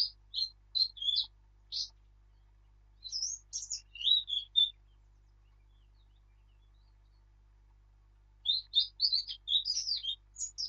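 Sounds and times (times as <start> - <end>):
Eurasian blackcap Sylvia atricapilla singing: 0.0 - 2.0, 3.0 - 7.2, 8.4 - 10.6
faint hum: 0.0 - 10.6.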